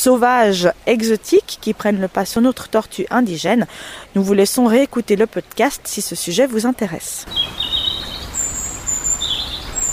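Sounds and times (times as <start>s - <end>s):
speech: 0.0s - 8.2s
soft ambient hiss: 0.0s - 9.9s
European robin singing: 6.0s - 9.9s.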